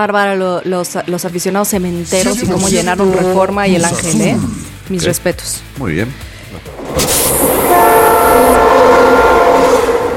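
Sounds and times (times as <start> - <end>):
speech: 0.0 - 7.1
passing train rumble and rattle: 6.4 - 10.1
locomotive horn blast: 6.9 - 10.1.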